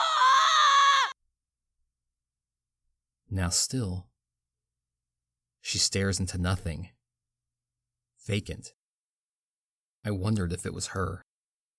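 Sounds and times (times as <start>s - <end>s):
blood-curdling piercing scream: 0.0s - 1.1s
speech: 3.3s - 4.1s, 5.6s - 7.0s, 8.2s - 8.8s, 10.0s - 11.3s.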